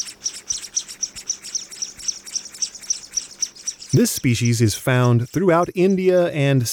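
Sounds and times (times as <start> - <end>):
scaly-breasted munia Lonchura punctulata calling: 0.0 - 5.3
speech: 3.9 - 6.7.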